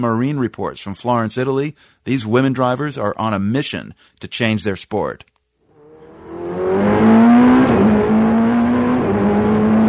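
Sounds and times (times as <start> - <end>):
speech: 0.0 - 5.3
Ferrari 488 GTE race car engine roaring and revving inside the cabin: 5.7 - 9.8.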